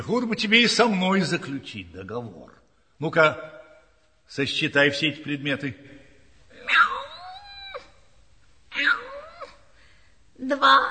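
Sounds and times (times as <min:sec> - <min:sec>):
speech: 0:00.0 - 0:03.6, 0:04.3 - 0:06.0, 0:10.4 - 0:10.8
human voice imitating cat meows: 0:06.6 - 0:07.9.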